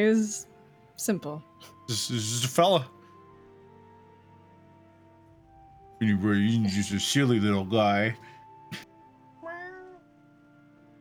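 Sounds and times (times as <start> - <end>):
speech: 0.0 - 3.0, 6.0 - 8.9
cat meowing: 9.4 - 10.1.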